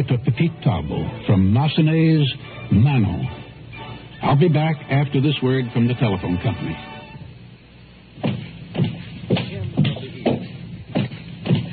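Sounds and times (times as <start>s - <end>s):
speech: 0.0s - 3.4s, 4.2s - 6.9s
footsteps: 8.2s - 11.7s.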